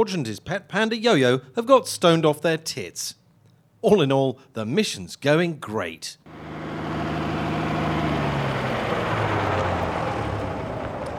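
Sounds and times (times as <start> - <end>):
speech: 0.0 - 3.2, 3.8 - 6.4
large bus engine idling at a stop: 6.3 - 11.1.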